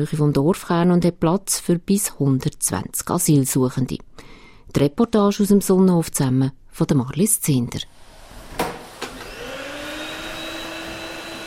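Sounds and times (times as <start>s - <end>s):
speech: 0.0s - 8.0s
vacuum cleaner vacuuming a dining and common room of an asylum seekers centre: 7.9s - 11.4s.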